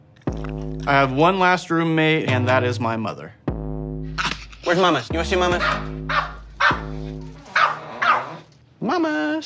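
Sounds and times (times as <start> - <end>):
speech: 0.8 - 3.4, 4.7 - 6.3, 8.9 - 9.4
dog barking: 5.6 - 8.5.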